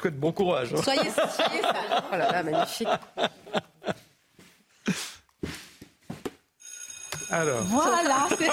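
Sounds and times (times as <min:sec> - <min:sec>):
speech: 0:00.0 - 0:03.7, 0:07.3 - 0:08.5
laughter: 0:00.8 - 0:04.1, 0:08.0 - 0:08.5
loud electric school bell ringing for end of recess: 0:06.6 - 0:08.5.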